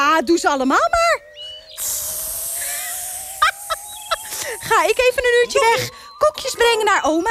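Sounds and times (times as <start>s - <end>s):
speech: 0.2s - 1.0s, 4.7s - 7.2s
voice imitating a snake hissing: 1.8s - 5.1s.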